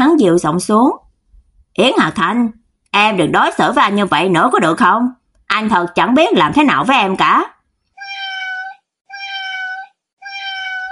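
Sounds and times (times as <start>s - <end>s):
speech: 0.2s - 1.0s, 1.8s - 7.6s
kitten meowing inside a cardboard box: 8.0s - 10.9s.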